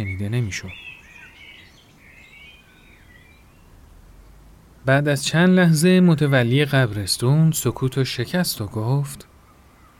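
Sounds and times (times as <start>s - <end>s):
speech: 0.0s - 0.9s, 4.8s - 9.3s
birds chirping in tall old trees in a cemetery: 0.0s - 4.0s, 5.2s - 9.9s
low outdoor rumble in a cemetery: 2.8s - 9.3s.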